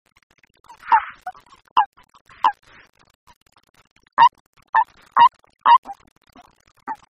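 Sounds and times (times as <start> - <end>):
Bufo bufo calling: 0.7 - 1.4, 4.2 - 6.0.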